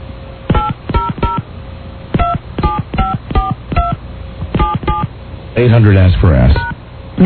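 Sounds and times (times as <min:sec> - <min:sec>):
touch-tone phone keypad beeps: 0:00.5 - 0:01.4, 0:02.2 - 0:05.1
speech: 0:05.6 - 0:07.2.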